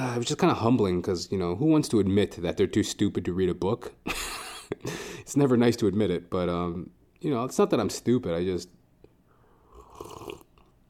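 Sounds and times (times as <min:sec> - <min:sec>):
speech: 0:00.2 - 0:08.8
sip of coffee: 0:09.6 - 0:10.7.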